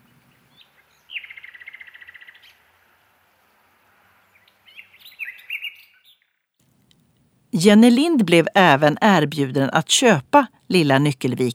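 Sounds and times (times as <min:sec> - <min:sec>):
nightingale singing: 0:00.0 - 0:02.6, 0:04.4 - 0:06.2
speech: 0:07.5 - 0:11.5.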